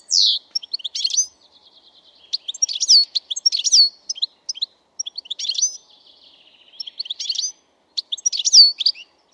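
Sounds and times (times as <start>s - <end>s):
European goldfinch singing: 0.0s - 9.3s.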